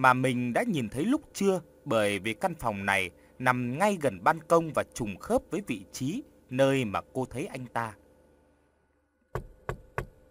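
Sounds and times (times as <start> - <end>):
speech: 0.0 - 8.0
knocking on the door of a room in a house: 9.3 - 10.2.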